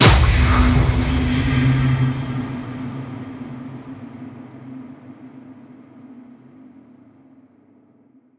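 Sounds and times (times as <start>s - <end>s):
impulse: 0.0s - 4.2s.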